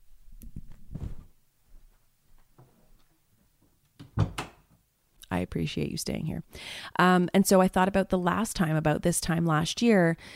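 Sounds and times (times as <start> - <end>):
office door rattling: 4.0 - 4.6
speech: 5.4 - 10.3.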